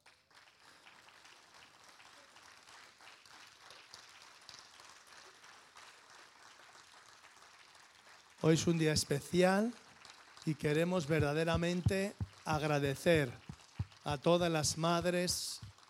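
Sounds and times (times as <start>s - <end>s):
audience applauding: 0.0s - 15.8s
speech: 8.4s - 9.8s, 10.4s - 13.4s, 14.0s - 15.6s.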